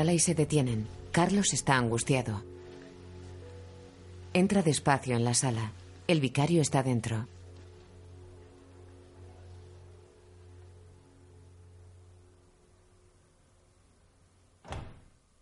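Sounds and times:
speech: 0.0s - 2.5s, 4.4s - 7.4s
low steady hum: 0.0s - 15.4s
door shutting: 14.6s - 15.2s.

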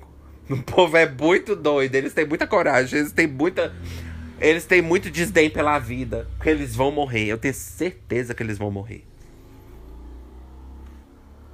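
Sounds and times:
speech: 0.5s - 9.1s
motorcycle engine passing by: 2.5s - 11.5s.

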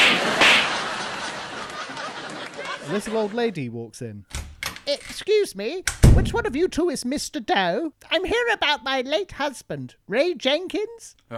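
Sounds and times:
sharp slap across the face: 0.0s - 0.8s
laughter: 0.0s - 3.6s
speech: 2.9s - 11.3s.

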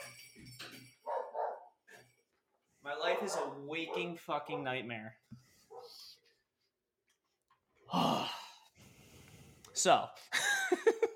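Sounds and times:
dog barking: 1.0s - 1.8s, 3.0s - 4.8s, 5.7s - 6.1s
speech: 3.2s - 5.5s, 9.8s - 11.1s.

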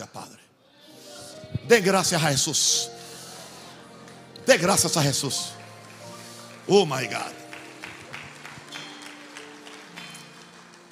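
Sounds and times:
speech: 1.7s - 3.0s, 4.5s - 5.6s, 6.7s - 7.4s
sparse clapping from church members: 4.0s - 10.9s.

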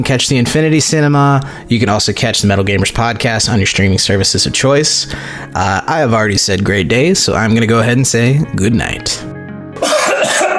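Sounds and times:
speech: 0.0s - 10.1s
held-in harsh throat-clearing cough: 9.8s - 10.5s.

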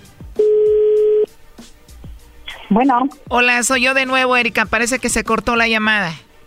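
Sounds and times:
steady electronic tone of a telephone being redialed: 0.4s - 1.3s
speech: 2.7s - 6.3s.

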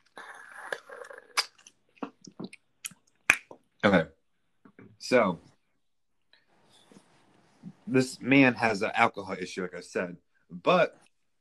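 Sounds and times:
person slurping a drink: 0.0s - 1.7s
swallowing and mouth clicks: 0.7s - 3.6s
speech: 3.8s - 4.2s, 5.1s - 5.5s, 7.9s - 11.0s.

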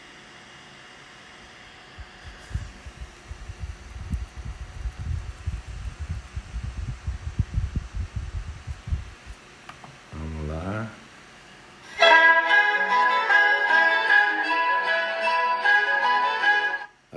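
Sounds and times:
low throbbing thumps: 2.0s - 9.4s
baroque concerto with sustained string chords played at a slowed tempo: 12.0s - 16.9s.

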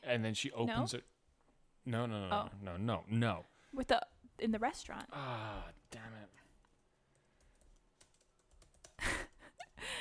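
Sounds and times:
speech: 0.0s - 1.1s, 1.8s - 6.4s
typing on a computer keyboard: 6.7s - 9.6s.

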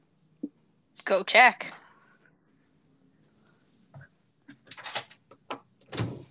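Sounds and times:
speech: 1.0s - 1.8s
door opening: 4.6s - 6.2s.

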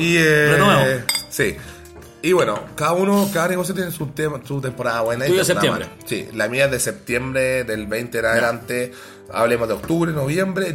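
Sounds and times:
speech: 0.0s - 10.7s
glasses clinking in a toast: 0.5s - 1.4s.

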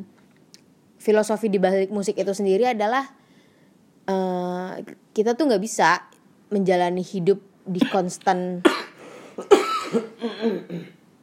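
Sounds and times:
speech: 1.0s - 3.2s, 4.8s - 8.8s, 9.4s - 10.9s
sharp cough: 8.6s - 11.0s.

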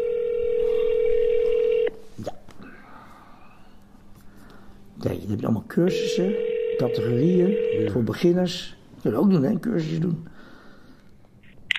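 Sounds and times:
telephone dial tone of an outgoing call: 0.0s - 2.0s, 5.9s - 8.1s
speech: 5.3s - 10.4s.

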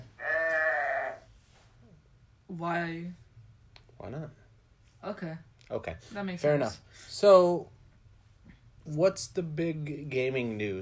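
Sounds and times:
single sheep bleating: 0.2s - 1.3s
speech: 2.5s - 3.2s, 4.0s - 4.4s, 5.0s - 7.8s, 8.8s - 10.8s.

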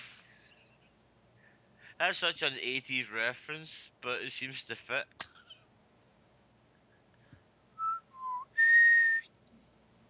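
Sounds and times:
speech: 2.0s - 5.3s
person whistling a short movie tune: 7.8s - 9.3s.

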